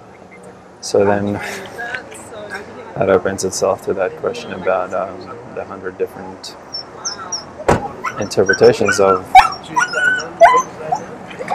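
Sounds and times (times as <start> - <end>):
low murmur: 0.0 - 11.5
speech: 0.8 - 1.8, 3.0 - 6.8, 8.2 - 10.7
dog whimpering in high-pitched whines: 6.7 - 11.5.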